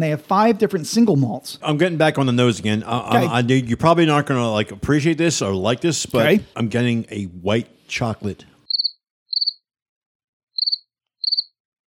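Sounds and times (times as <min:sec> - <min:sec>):
speech: 0:00.0 - 0:08.5
cricket chirping: 0:08.7 - 0:09.6, 0:10.6 - 0:11.5.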